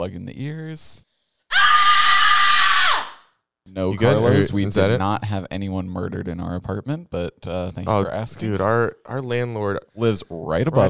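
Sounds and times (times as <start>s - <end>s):
speech: 0.0s - 1.1s, 3.7s - 10.8s
person screaming loudly: 1.5s - 3.2s.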